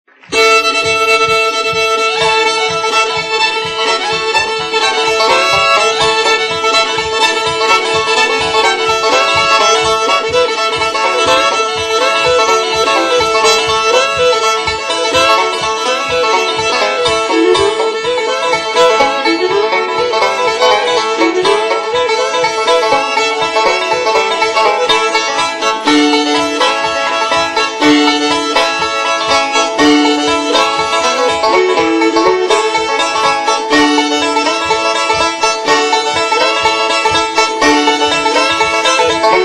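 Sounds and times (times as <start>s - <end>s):
fiddle: 0.0s - 39.4s
banjo: 0.1s - 39.4s.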